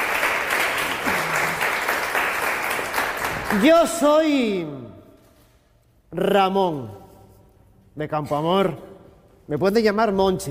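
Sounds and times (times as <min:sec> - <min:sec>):
audience in a theatre applauding: 0:00.0 - 0:03.8
speech: 0:03.5 - 0:05.0, 0:06.1 - 0:07.0, 0:08.0 - 0:08.9, 0:09.5 - 0:10.4.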